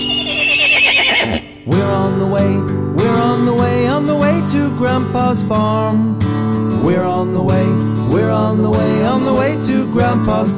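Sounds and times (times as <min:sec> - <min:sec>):
big brown horse on a farm neighing: 0:00.0 - 0:01.7
speech: 0:01.3 - 0:10.5.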